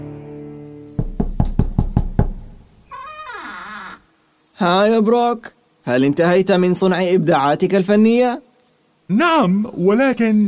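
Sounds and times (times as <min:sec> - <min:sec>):
knocking on a wooden workshop door: 0:01.0 - 0:02.8
long wavering creak bending downward in pitch: 0:02.8 - 0:04.1
speech: 0:04.6 - 0:08.5, 0:09.1 - 0:10.4.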